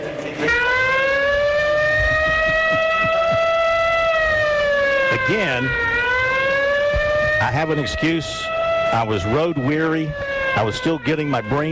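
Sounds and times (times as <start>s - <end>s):
siren sound effect: 0.4s - 11.7s
laughter: 1.7s - 4.0s
speech: 5.3s - 5.9s, 7.4s - 11.7s.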